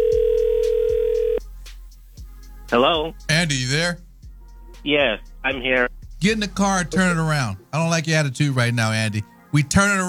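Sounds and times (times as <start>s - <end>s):
telephone dial tone as a call is placed: 0.0s - 1.4s
speech: 2.7s - 4.0s, 4.8s - 10.0s.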